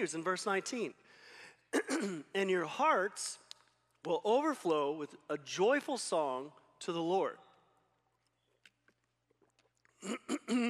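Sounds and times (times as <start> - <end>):
speech: 0.0 - 3.4, 4.0 - 7.4, 10.0 - 10.6
person clearing throat of phlegm: 1.7 - 2.3, 10.0 - 10.6.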